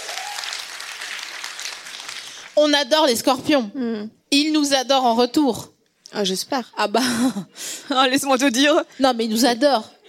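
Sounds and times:
audience in a hall applauding: 0.0s - 2.6s
speech: 2.6s - 10.0s.

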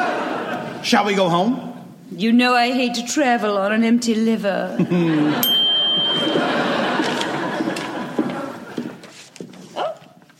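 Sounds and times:
laughter: 0.0s - 0.8s, 4.8s - 9.2s
speech: 0.8s - 6.6s
single bright bell ringing: 5.4s - 7.4s.

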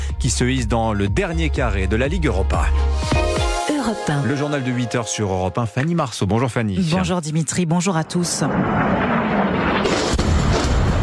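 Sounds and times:
speech: 0.2s - 10.2s
explosion blast at night in central Iran near Isfahan: 8.2s - 11.0s
sharp crack: 8.5s - 11.0s.

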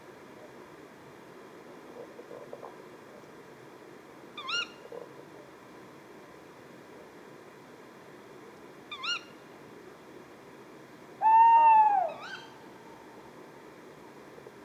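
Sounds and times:
tawny owl Strix aluco kewick calls at night: 11.2s - 12.7s.

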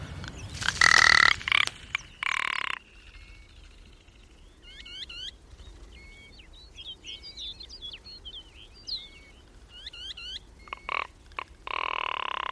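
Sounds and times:
rock ptarmigan giving dry croaking rattles on the Cairngorms plateau: 0.4s - 3.3s, 10.7s - 12.5s.

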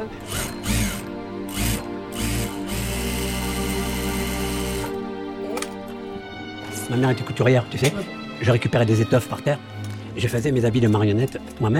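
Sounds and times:
special sewing machine running with mechanical whir and rattle: 0.2s - 5.0s
speech: 6.9s - 11.7s.

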